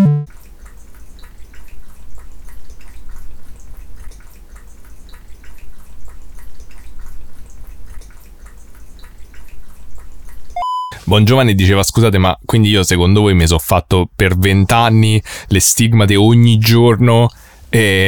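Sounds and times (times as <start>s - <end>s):
small water drips: 0.3s - 11.0s, 17.1s - 17.7s
speech: 11.1s - 18.0s
person sipping water ASMR-style: 17.3s - 17.8s.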